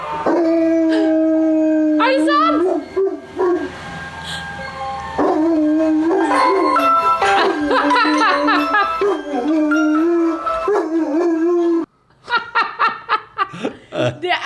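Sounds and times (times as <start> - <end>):
dog howling in reaction to a passing ice cream truck: 0.2 - 3.8, 5.2 - 7.1, 7.7 - 11.9
speech: 2.1 - 2.7
breathy laughter: 7.0 - 9.5, 12.2 - 14.3.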